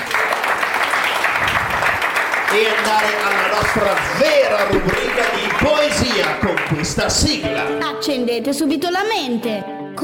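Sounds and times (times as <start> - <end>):
dense steady applause from a group: 0.0 - 7.8
speech: 2.5 - 10.0.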